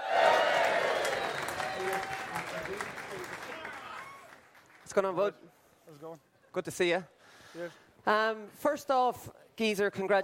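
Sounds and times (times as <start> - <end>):
live crowd cheering and whooping: 0.0 - 2.8, 3.4 - 4.4
live crowd applauding: 0.0 - 5.2
speech: 5.0 - 10.2.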